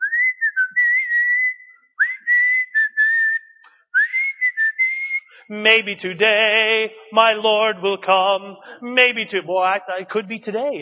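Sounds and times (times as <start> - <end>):
man whistling a hymn tune: 0.0 - 5.5
speech: 5.5 - 10.7.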